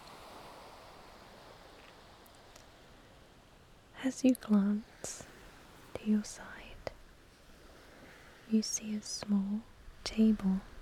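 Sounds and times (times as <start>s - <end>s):
ocean waves gently lapping the shore: 0.0s - 10.7s
speech: 4.0s - 5.3s, 6.0s - 6.5s, 8.5s - 10.7s.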